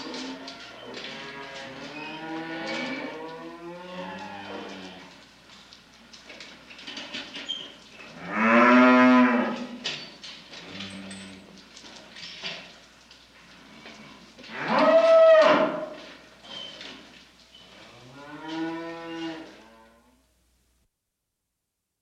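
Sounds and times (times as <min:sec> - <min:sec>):
cows mooing: 0:00.0 - 0:05.1, 0:08.2 - 0:09.8, 0:13.8 - 0:15.9, 0:17.9 - 0:20.1.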